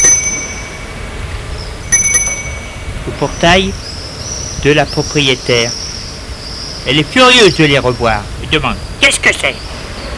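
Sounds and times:
bell rung at the gate of a private property: 0.0 - 1.2, 1.8 - 3.0
speech: 3.1 - 3.9, 4.6 - 5.8, 6.8 - 9.7.

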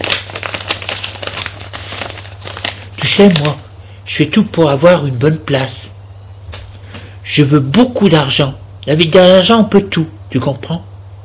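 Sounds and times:
paper sheets rustling as they are gathered and put away: 0.0 - 3.7
low steady hum: 0.0 - 11.2
speech: 3.2 - 5.9, 7.3 - 10.9.

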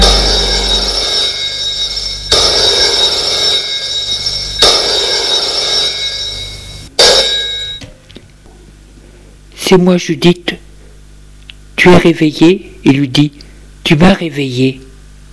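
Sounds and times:
old-fashioned telephone bell ringing: 0.0 - 7.9
speech: 9.7 - 10.7, 11.8 - 14.9.

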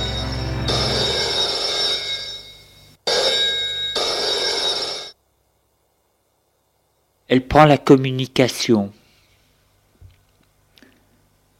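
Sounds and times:
telephone bell ringing: 0.0 - 5.2
speech: 7.3 - 9.0.

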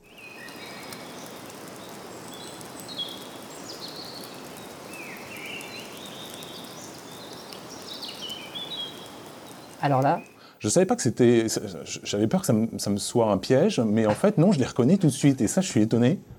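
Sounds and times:
soft airy hush of wind in forest: 0.0 - 15.8
steady fizzing crackle of dripping moisture in a damp forest after rain: 0.0 - 16.0
faint bird calls high above forest undergrowth: 0.2 - 10.4
speech: 9.8 - 16.3.

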